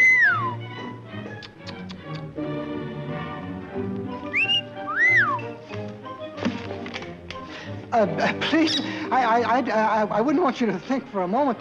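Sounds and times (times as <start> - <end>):
parakeet whistling: 0.0 - 0.7, 4.2 - 5.6, 8.6 - 8.9
music: 0.0 - 11.5
speech: 7.9 - 11.5.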